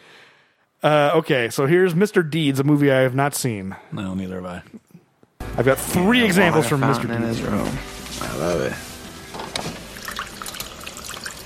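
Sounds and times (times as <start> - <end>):
speech: 0.8 - 4.8, 5.6 - 8.9
indoor water fountain trickling: 9.8 - 11.4.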